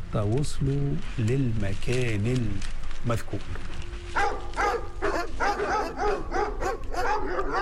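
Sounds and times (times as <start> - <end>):
speech: 0.1 - 4.2
police dogs barking and yipping: 4.1 - 7.5.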